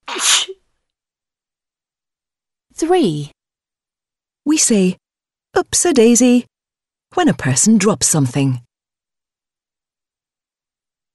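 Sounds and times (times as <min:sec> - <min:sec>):
single human sneeze: 0:00.0 - 0:00.6
speech: 0:02.8 - 0:03.4, 0:04.5 - 0:06.5, 0:07.1 - 0:08.7.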